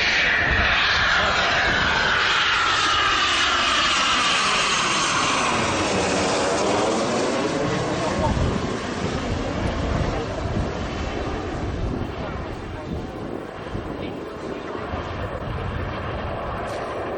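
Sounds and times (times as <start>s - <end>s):
Eurofighter combat jet flying overhead at an air festival in Gijón: 0.0s - 17.1s.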